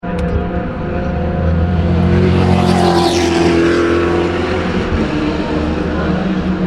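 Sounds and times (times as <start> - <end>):
Spyker race car at Tertre Rouge: 0.0 - 6.6.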